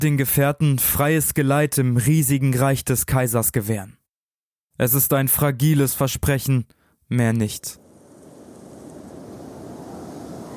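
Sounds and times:
speech: 0:00.0 - 0:04.0, 0:04.8 - 0:07.8
storm wind blowing sand: 0:07.6 - 0:10.5.

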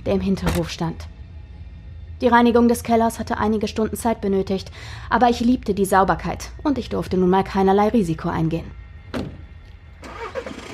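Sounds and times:
speech: 0:00.0 - 0:01.1, 0:02.2 - 0:09.4
small old VW car engine starting at dusk: 0:10.0 - 0:10.7.

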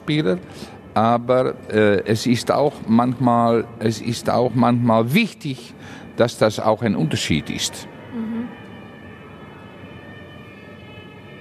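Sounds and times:
speech: 0:00.1 - 0:08.3
emergency vehicle siren wailing outside: 0:07.2 - 0:11.3.

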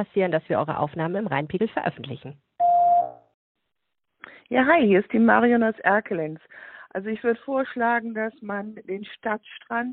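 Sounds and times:
speech: 0:00.0 - 0:02.5, 0:04.5 - 0:09.9
answering machine beep: 0:02.6 - 0:03.2.

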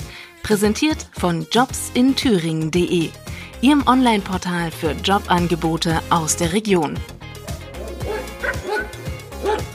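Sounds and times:
speech: 0:00.5 - 0:07.2
several dogs barking and yipping: 0:07.4 - 0:09.7.

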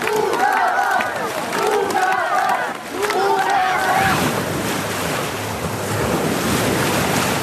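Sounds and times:
lively crowd of voices and excited shouts: 0:00.0 - 0:04.4
wave machine waves splashing in an outdoor pool: 0:00.0 - 0:07.4.

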